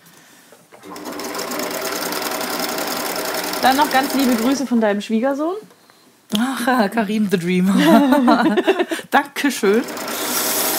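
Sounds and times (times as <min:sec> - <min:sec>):
sewing machine stitching fabric: 0:00.7 - 0:04.7, 0:09.7 - 0:10.7
speech: 0:03.6 - 0:10.1
laughter: 0:07.7 - 0:09.0.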